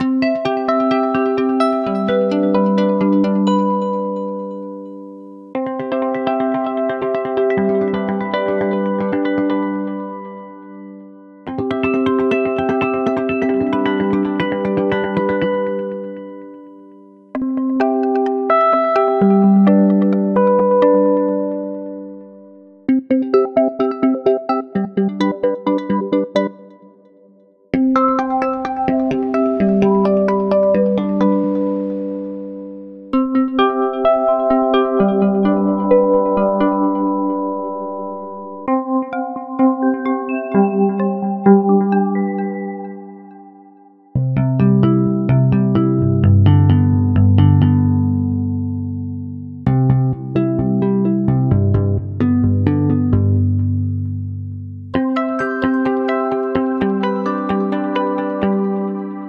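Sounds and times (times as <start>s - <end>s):
electric arpeggios: 0.0s - 26.8s, 27.8s - 59.2s.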